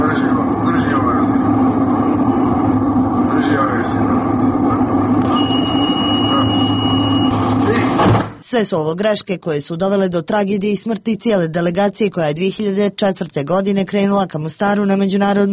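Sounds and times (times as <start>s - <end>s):
aircraft engine drone in a cockpit: 0.0s - 8.0s
thin high electronic cockpit warning tone: 5.2s - 7.8s
speech: 8.5s - 15.5s.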